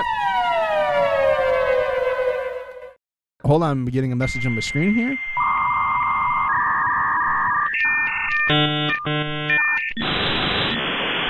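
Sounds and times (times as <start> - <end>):
siren wail winding down: 0.0 - 3.0, 5.4 - 11.2
speech: 3.5 - 5.4, 8.5 - 10.9.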